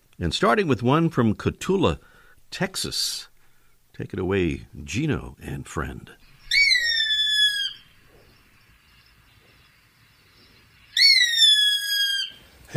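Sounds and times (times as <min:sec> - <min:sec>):
speech: 0:00.2 - 0:03.3, 0:04.0 - 0:06.2
gray hawk long clear whistled calls at a ranch in Texas: 0:06.2 - 0:08.4, 0:10.5 - 0:12.7.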